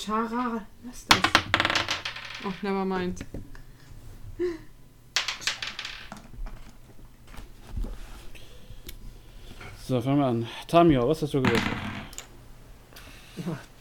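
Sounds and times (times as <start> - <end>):
speech: 0.0 - 3.6, 4.4 - 4.7, 9.9 - 11.8, 13.4 - 13.7
dice clattering across a tabletop: 1.1 - 2.7, 5.2 - 6.8, 11.4 - 12.3.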